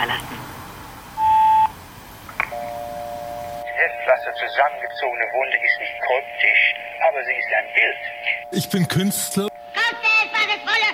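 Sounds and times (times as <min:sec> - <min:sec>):
answering machine beep tone: 0:01.2 - 0:01.7, 0:02.5 - 0:10.5
quiet sustained tone: 0:02.6 - 0:10.7
speech: 0:04.1 - 0:09.5.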